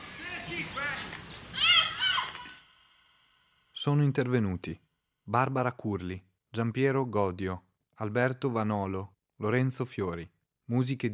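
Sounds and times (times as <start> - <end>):
children at play outdoors calling and chattering: 0.0 - 2.7
speech: 3.8 - 11.1.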